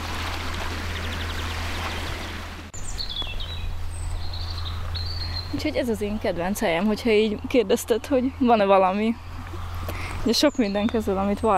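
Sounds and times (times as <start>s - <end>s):
fast-flowing cold mountain stream rushing: 0.0s - 4.8s
high bird chirps: 1.0s - 5.6s
speech: 5.6s - 9.3s, 10.2s - 11.5s.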